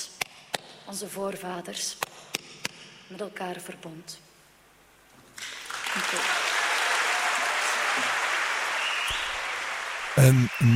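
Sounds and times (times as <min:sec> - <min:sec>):
speech: 0:00.9 - 0:02.4, 0:03.1 - 0:04.3, 0:06.0 - 0:06.4, 0:10.2 - 0:10.7
large crowd applauding in a concert hall: 0:05.4 - 0:10.7.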